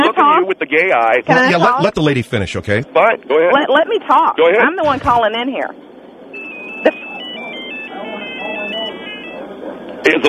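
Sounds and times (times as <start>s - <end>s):
voices talking: 0.0s - 10.2s
speech: 0.5s - 5.9s, 6.8s - 7.0s, 10.0s - 10.2s
phone electronic ringtone playing a stepping melody of bright tones: 6.3s - 9.5s.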